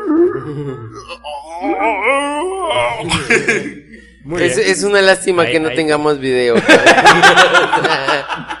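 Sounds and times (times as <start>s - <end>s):
man imitating zombie breathing and moaning: 0.2s - 3.5s
speech: 0.4s - 8.5s
laughter: 2.9s - 3.8s, 6.6s - 8.5s.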